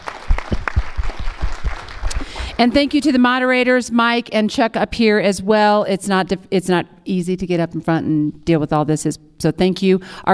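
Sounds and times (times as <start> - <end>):
room full of people clapping: 0.0 - 2.9
speech: 2.6 - 10.3.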